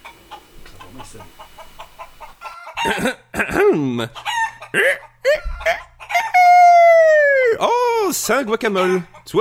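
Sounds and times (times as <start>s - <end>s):
speech: 1.0s - 1.4s, 2.8s - 5.8s, 7.6s - 9.3s
rooster crowing: 1.8s - 3.0s, 4.2s - 7.5s.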